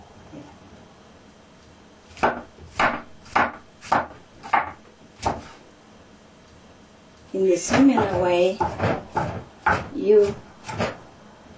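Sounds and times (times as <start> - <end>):
knife chopping mushrooms finely on a cutting board: 2.1 - 5.6, 7.6 - 11.0
speech: 7.4 - 9.3, 10.0 - 10.9.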